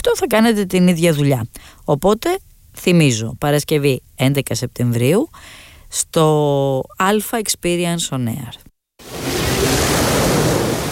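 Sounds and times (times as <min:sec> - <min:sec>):
speech: 0:00.1 - 0:09.4
sea waves washing onto a beach: 0:09.0 - 0:10.9.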